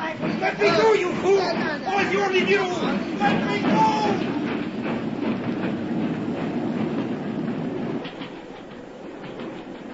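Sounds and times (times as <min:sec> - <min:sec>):
British railway train clattering along the rails: 0:00.0 - 0:09.9
speech: 0:00.5 - 0:05.0.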